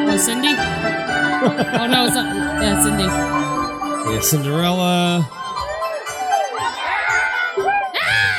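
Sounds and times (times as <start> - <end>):
speech: 0.2 - 3.5, 4.0 - 5.4
laughter: 1.2 - 3.2
crowd of riders screaming on a pirate ship ride: 5.4 - 8.3.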